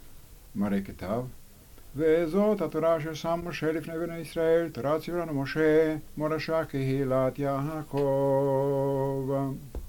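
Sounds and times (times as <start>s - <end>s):
Shabbat morning liturgical chanting: 2.0s - 9.7s.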